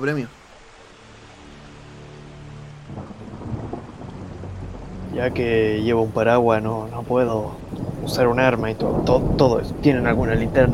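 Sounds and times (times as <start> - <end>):
speech: 0.0 - 0.4, 5.2 - 10.7
steady rain: 0.0 - 10.7
thunder rumble: 2.8 - 10.7.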